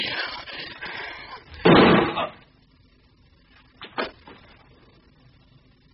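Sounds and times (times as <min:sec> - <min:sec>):
single gunshot: 0:01.6 - 0:02.2.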